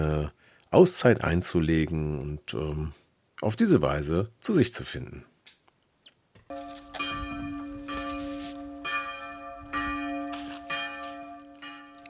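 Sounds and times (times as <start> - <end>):
speech: 0.0 - 5.3
monastery church bells ringing: 6.5 - 12.0.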